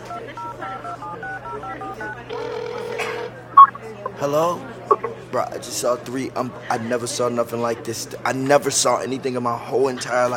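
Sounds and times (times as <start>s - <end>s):
phone keypad dialing tones: 0.0s - 3.8s
speech: 4.2s - 4.7s, 5.3s - 10.3s.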